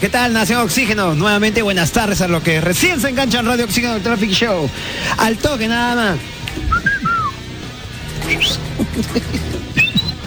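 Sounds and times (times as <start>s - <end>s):
speech: 0.0s - 6.4s, 8.3s - 9.6s
person whistling: 6.7s - 7.4s, 8.2s - 8.7s, 9.8s - 10.2s
laughter: 8.4s - 10.2s.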